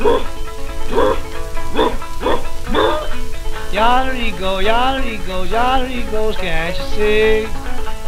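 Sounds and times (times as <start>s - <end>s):
man's voice imitating an old hound dog baying: 0.0s - 0.3s, 0.9s - 6.5s
speech: 3.8s - 7.6s.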